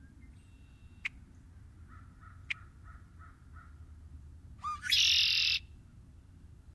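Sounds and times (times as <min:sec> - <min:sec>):
red-winged blackbird giving a loud harsh buzzy trill: 0:04.6 - 0:05.7.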